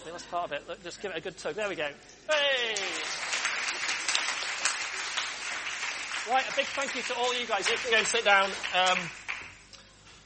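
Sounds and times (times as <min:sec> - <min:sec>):
speech: 0:00.1 - 0:03.2, 0:06.3 - 0:09.2
group of children clapping: 0:02.6 - 0:09.6.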